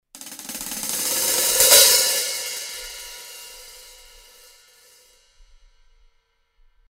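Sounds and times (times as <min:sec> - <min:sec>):
cymbal crescendo from closed to open: 0:00.2 - 0:06.0.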